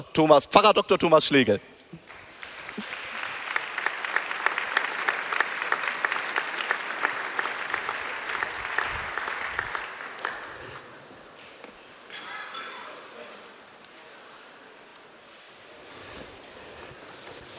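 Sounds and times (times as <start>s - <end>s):
speech: 0.0s - 1.7s
audience applause welcoming a pastor onto the stage at a church congress: 2.0s - 11.0s.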